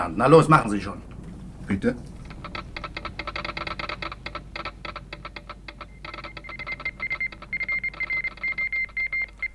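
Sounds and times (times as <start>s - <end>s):
speech: 0.0s - 1.1s, 1.7s - 2.1s
rapid mechanical clicking of a radio telegraph transmission: 2.0s - 9.5s
steady high Morse code beeping tone from a motor yacht radio: 4.6s - 9.5s.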